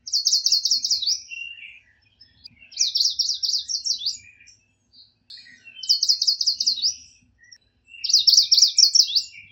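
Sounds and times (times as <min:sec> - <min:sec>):
yellow warbler: 0:00.0 - 0:09.4.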